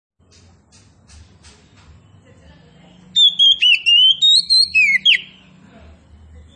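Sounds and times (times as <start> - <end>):
Oriental magpie-robin of the kacer poci type singing vigorously: 3.1 - 5.5.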